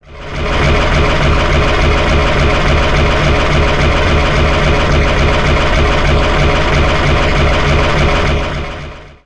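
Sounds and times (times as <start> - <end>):
engine and pistons: 0.0 - 9.2.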